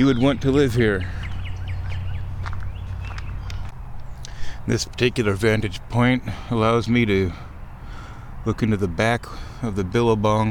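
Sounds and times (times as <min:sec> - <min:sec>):
speech: 0:00.0 - 0:01.3, 0:04.7 - 0:07.5, 0:08.4 - 0:10.4
short chirpy bird calls in a forest: 0:00.0 - 0:05.5, 0:07.2 - 0:09.7
steady low outdoor rumble: 0:00.0 - 0:10.4.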